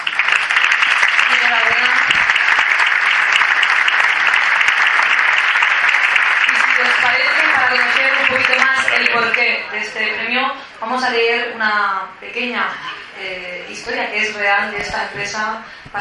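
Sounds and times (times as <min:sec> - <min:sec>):
crowd cheering: 0:00.0 - 0:09.4
large crowd applauding at an award ceremony: 0:00.0 - 0:09.6
speech: 0:09.2 - 0:15.9.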